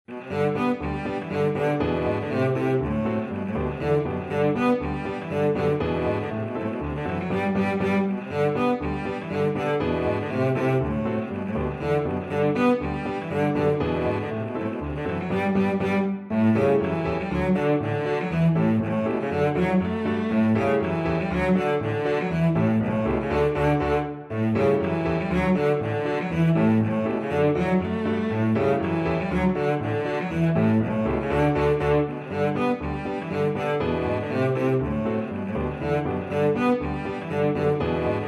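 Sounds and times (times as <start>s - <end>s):
cello playing a Rheinlander polka: 0.1s - 38.2s.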